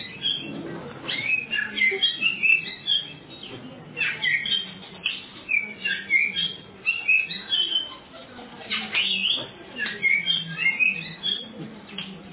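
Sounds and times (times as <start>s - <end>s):
Oriental magpie-robin singing scratchy chattering notes and short whistles: 0.0s - 12.3s.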